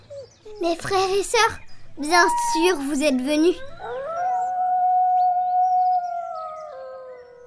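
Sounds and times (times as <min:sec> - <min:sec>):
speech: 0:00.6 - 0:04.0
wolves howling: 0:02.0 - 0:07.4.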